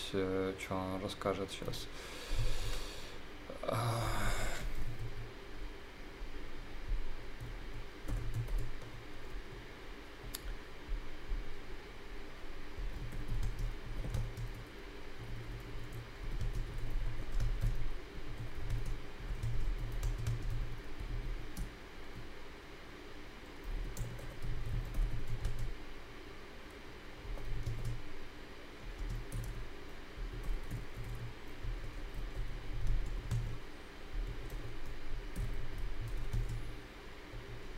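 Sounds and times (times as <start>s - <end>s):
low hum: 0.0s - 37.7s
speech: 0.1s - 2.7s, 3.6s - 4.4s
typing on a computer keyboard: 7.4s - 9.0s, 12.8s - 21.7s, 23.6s - 25.8s, 27.2s - 28.0s, 28.8s - 36.7s.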